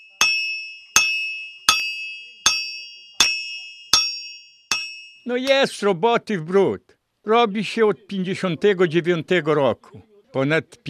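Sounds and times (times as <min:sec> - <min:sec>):
blacksmith hammer striking metal at an anvil in Siemiony: 0:00.0 - 0:05.7
speech: 0:05.3 - 0:10.8.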